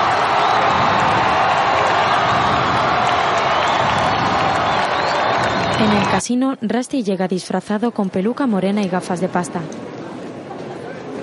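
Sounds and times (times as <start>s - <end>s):
scattered shouts and whoops from a crowd: 0.0s - 6.2s
large crowd cheering and applauding a boxer's ring entrance: 0.0s - 6.3s
speech: 5.9s - 9.8s.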